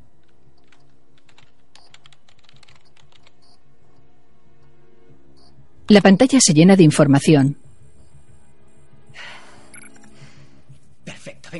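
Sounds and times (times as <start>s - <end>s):
steady low hum: 0.0s - 11.5s
rapid computer keyboard typing: 0.2s - 3.6s
speech: 5.9s - 7.6s.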